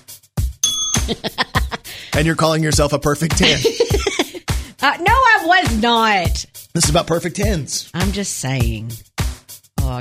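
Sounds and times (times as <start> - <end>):
bright metallic bell ding: 0.6 - 1.4
laughter: 1.0 - 2.3, 3.4 - 4.5
speech: 1.1 - 1.4, 2.2 - 4.2, 4.8 - 9.1.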